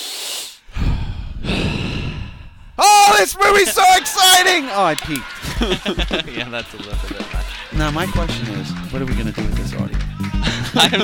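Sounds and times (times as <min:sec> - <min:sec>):
person breathing heavily on purpose: 0:00.0 - 0:02.8, 0:07.4 - 0:07.8
laughter: 0:03.0 - 0:11.0
speech: 0:03.2 - 0:11.0.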